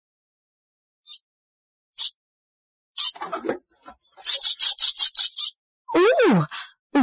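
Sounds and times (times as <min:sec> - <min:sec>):
bird chirping and twittering: 0:01.0 - 0:01.2, 0:02.0 - 0:02.2, 0:03.0 - 0:07.0
speech: 0:03.2 - 0:04.5.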